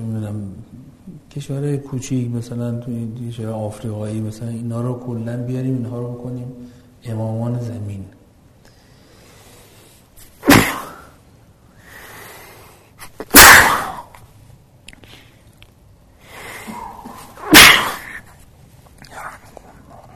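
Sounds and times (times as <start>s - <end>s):
speech: 1.3s - 8.2s
person sneezing loudly: 10.4s - 11.2s, 13.0s - 14.1s, 16.7s - 18.3s.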